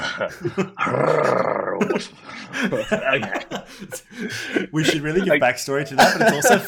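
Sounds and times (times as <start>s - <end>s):
laughter: 0.0s - 6.6s
speech: 0.2s - 6.6s
person imitating a cat purring: 0.9s - 1.8s.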